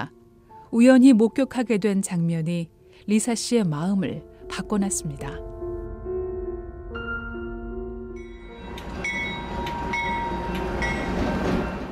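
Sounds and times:
speech: 0.7s - 5.5s
train rumbling on rails: 8.3s - 11.9s.

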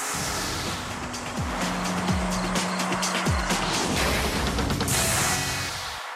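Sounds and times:
sharp falling tone sweeps: 0.1s - 5.4s
2014 Ferrari LaFerrari supercar engine roar: 0.2s - 5.6s.

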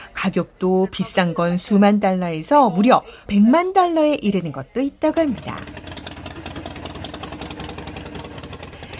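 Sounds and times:
speech: 0.2s - 5.8s
Harley-Davidson motorcycle engine idling: 5.6s - 8.9s.

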